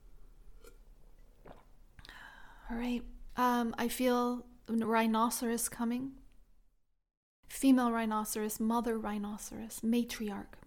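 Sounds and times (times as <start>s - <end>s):
person sipping water: 0.5s - 2.6s
swallow: 0.6s - 2.2s
speech: 2.7s - 6.2s, 7.6s - 10.6s.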